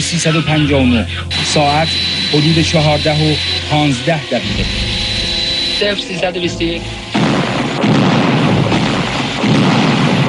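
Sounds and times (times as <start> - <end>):
speech: 0.1 - 5.0, 5.8 - 7.9
brief tonal music-like passage: 1.2 - 9.3
multiple heavy explosions at an airport: 4.4 - 10.2.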